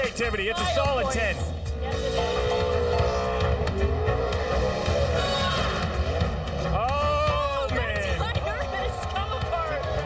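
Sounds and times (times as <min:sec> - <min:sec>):
speech: 0:00.2 - 0:02.7
car engine revving during a burnout: 0:01.7 - 0:10.0.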